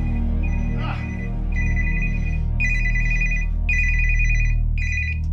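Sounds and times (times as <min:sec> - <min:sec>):
mobile phone ringing with a bright electronic ringtone: 0:00.0 - 0:05.2.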